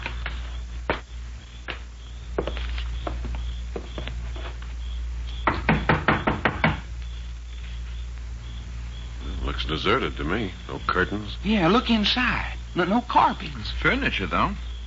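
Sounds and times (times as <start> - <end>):
low steady hum: 0.0 - 14.8
knocking on a door: 5.4 - 6.9
speech: 9.7 - 14.7.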